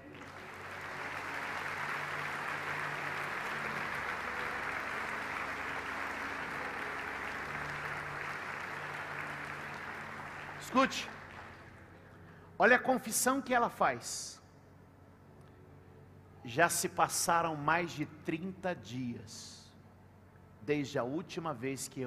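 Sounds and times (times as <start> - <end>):
large crowd applause: 0.0 - 12.0
faint low instrumental tones: 0.0 - 22.0
speech: 10.7 - 11.2, 12.6 - 14.4, 16.5 - 19.6, 20.7 - 22.0.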